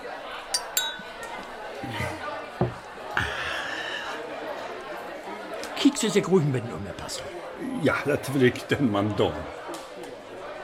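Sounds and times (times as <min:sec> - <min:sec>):
murmur of voices and chatter: 0:00.0 - 0:10.6
champagne glasses clinking in a toast: 0:00.4 - 0:02.9
speech: 0:01.8 - 0:02.2, 0:05.9 - 0:09.6.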